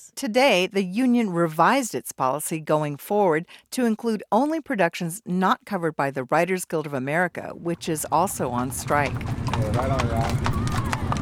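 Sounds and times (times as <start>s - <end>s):
speech: 0.2s - 10.6s
horse hooves clip-clopping on pavement on a picket line: 7.7s - 11.2s
crowd of voices murmuring and calling: 8.3s - 11.2s.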